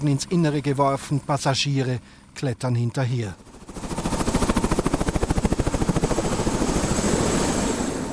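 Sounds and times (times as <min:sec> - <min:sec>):
speech: 0:00.0 - 0:03.8
helicopter engine whining during takeoff: 0:00.0 - 0:08.1
helicopter rotor thumping during takeoff over stone roofs: 0:03.4 - 0:08.1.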